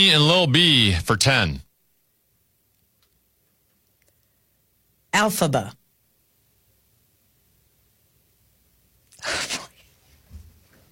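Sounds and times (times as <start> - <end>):
speech: 0.0 - 1.6, 5.2 - 5.8
person sneezing: 9.2 - 9.9.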